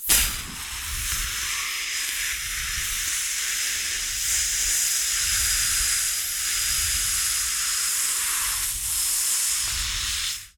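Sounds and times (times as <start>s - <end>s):
welding for a fix: 0.0s - 10.4s.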